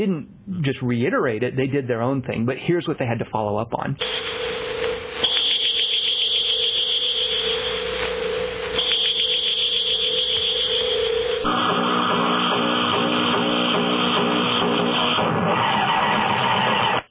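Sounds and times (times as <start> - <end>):
speech: 0.0 - 5.2
sci-fi heat ray weapon piercing electronic whine: 4.0 - 17.0
steady low drone of sci-fi heat ray weapon: 10.0 - 17.0
harsh grinding buzzing roar of sci-fi heat ray weapon firing: 10.8 - 17.0.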